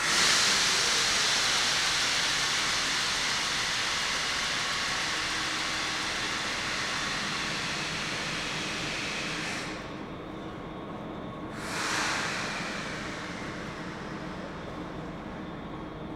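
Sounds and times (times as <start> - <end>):
light train air blast at a station: 0.0 - 10.3, 11.4 - 16.0.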